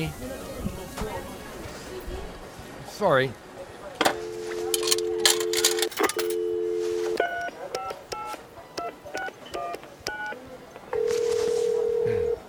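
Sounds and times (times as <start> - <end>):
speech: 0.0 - 0.3, 3.0 - 3.4
electronic telephone keypad dialing beeps: 4.1 - 10.4
telephone dial tone: 4.2 - 5.6, 6.3 - 7.2, 11.0 - 12.4.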